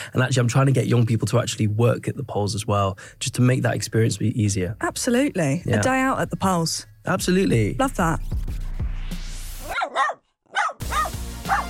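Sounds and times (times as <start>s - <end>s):
speech: 0.1s - 8.6s
dog barking: 9.7s - 11.6s.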